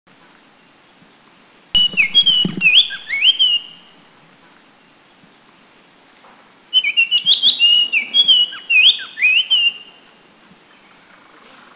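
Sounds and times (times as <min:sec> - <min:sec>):
Oriental Magpie Robin singing: 0:01.8 - 0:03.9, 0:06.8 - 0:10.0.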